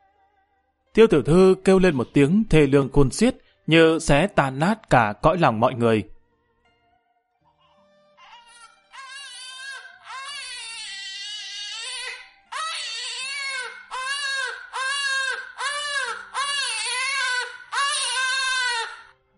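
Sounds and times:
speech: 1.0 - 6.2
newborn baby crying in a large family compound: 7.5 - 19.1.

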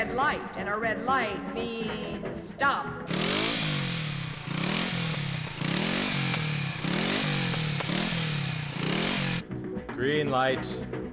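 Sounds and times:
speech: 0.2 - 3.7, 10.0 - 11.0
motorcycle engine revving: 3.1 - 9.4
steady rattling drone: 3.1 - 9.4.

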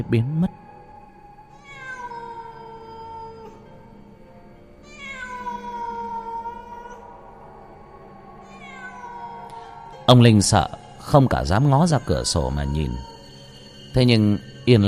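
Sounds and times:
speech: 0.0 - 0.6, 10.1 - 13.1, 14.0 - 14.8
cat meowing outside: 1.6 - 3.7, 4.8 - 7.1, 8.4 - 9.8, 11.4 - 13.4.

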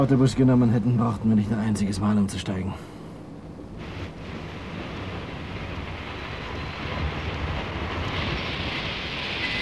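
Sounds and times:
speech: 0.0 - 3.0
train halting at a station in thick fog: 3.8 - 9.6.

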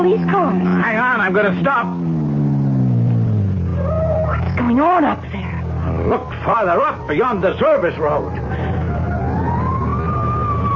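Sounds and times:
speech: 0.0 - 2.2, 4.6 - 8.7
fire engine rumbling engine: 0.0 - 10.7
fire engine siren wailing: 3.5 - 4.8, 5.8 - 10.7.

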